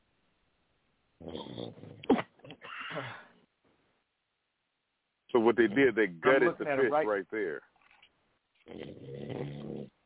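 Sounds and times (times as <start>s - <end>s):
speech: 1.2s - 2.2s, 5.3s - 7.7s
person snoring with a rasping throaty rattle: 8.7s - 9.9s.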